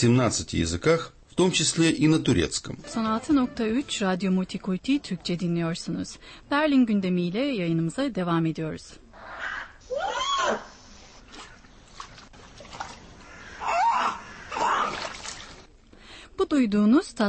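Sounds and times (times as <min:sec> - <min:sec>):
speech: 0:00.0 - 0:09.0, 0:09.9 - 0:10.7, 0:16.4 - 0:17.2
young polar bear cub crying at the zoo: 0:09.3 - 0:10.7, 0:13.3 - 0:15.0
water trickling: 0:11.2 - 0:13.5, 0:14.6 - 0:15.7
polar bear cub splashing in water: 0:11.2 - 0:15.7.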